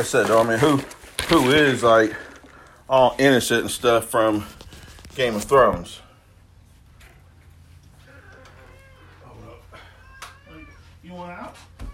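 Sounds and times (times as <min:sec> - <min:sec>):
speech: 0:00.0 - 0:02.3, 0:02.9 - 0:04.6, 0:05.2 - 0:06.0
cat meowing: 0:08.0 - 0:11.1.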